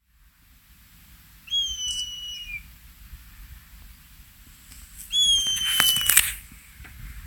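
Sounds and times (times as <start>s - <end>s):
buzzard calling: 1.5s - 2.7s, 5.1s - 6.2s.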